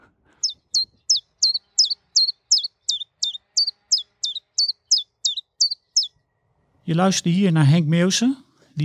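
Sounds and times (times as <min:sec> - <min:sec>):
common chiffchaff singing: 0:00.3 - 0:06.1
speech: 0:06.9 - 0:08.8.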